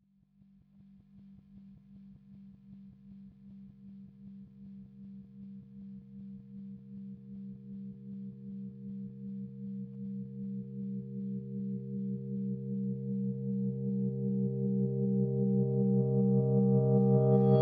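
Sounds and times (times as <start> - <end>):
reversed electric piano C minor seventh chord: 10.3 - 17.6.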